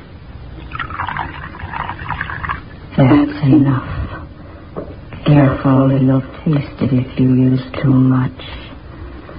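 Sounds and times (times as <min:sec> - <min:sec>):
liquid pouring from a bottle into a cup of cocoa: 0:00.6 - 0:02.8
speech: 0:03.0 - 0:04.0, 0:05.2 - 0:08.6.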